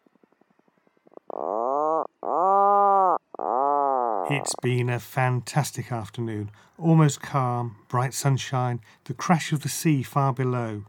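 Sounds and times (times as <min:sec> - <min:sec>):
Atlantic puffin groaning calls from burrows in grassy banks: 0:01.0 - 0:04.7
speech: 0:04.3 - 0:10.8.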